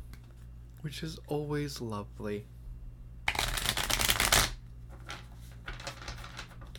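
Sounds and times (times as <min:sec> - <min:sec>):
speech: 0:00.8 - 0:02.6
tarot cards shuffling in a papery riffle: 0:03.3 - 0:06.7.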